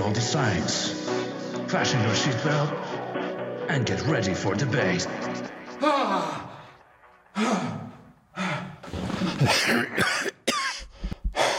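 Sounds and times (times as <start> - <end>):
speech: 0.1 - 1.1, 1.7 - 2.9, 3.7 - 6.5, 7.4 - 7.8, 8.4 - 10.2
breathy sighing gasps: 7.4 - 9.6, 10.9 - 11.5
person coughing: 9.3 - 11.5.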